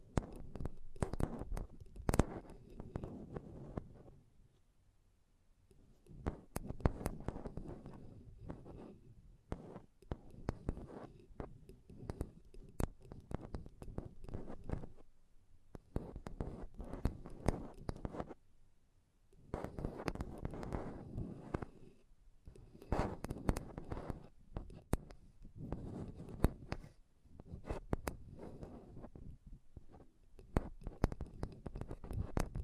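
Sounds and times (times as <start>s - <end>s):
tapping and scratching on a microphone: 0.0s - 4.2s, 5.7s - 15.1s, 15.7s - 18.4s, 19.4s - 32.6s.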